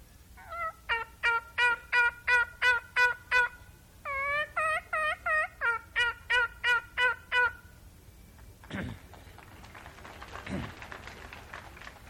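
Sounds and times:
turkey call imitating turkey gobbles: 0.4s - 7.7s.

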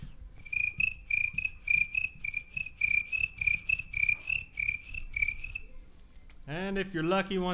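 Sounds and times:
crickets chirping at dusk: 0.4s - 5.7s
speech: 6.5s - 7.5s.

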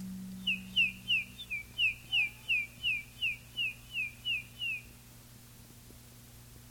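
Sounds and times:
faint low hum: 0.0s - 6.6s
person whistling high sliding peeps imitating baby chicks: 0.4s - 4.8s.

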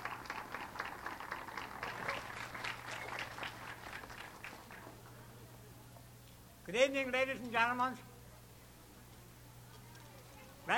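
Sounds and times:
audience applause: 0.0s - 5.0s
faint low hum: 0.0s - 10.7s
speech: 6.7s - 8.1s.

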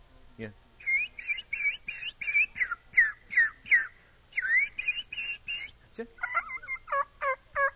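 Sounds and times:
voice imitating wild turkey yelps and clucks: 0.8s - 7.7s.

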